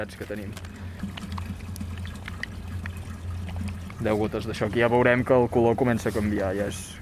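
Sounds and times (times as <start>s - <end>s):
speech: 0.0s - 1.2s, 4.0s - 6.9s
steady low hum: 0.0s - 6.9s
water mixed with reagents trickling and sloshing in a small vial: 0.0s - 6.9s.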